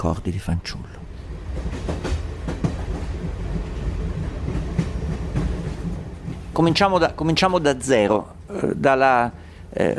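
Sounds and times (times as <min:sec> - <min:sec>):
speech: 0:00.0 - 0:01.0, 0:06.6 - 0:09.9
passenger train rumbling on rails heard from inside the carriage: 0:00.0 - 0:09.9
train wheels clacking over track joints: 0:01.4 - 0:07.5.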